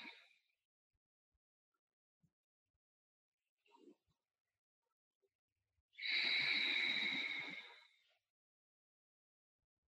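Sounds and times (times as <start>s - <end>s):
deep slow breathing during a guided meditation: 6.0s - 7.9s.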